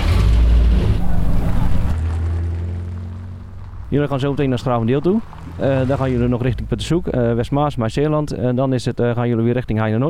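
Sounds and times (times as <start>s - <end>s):
1953 vintage vehicle engine starting and idling: 0.0s - 8.0s
speech: 3.9s - 10.0s.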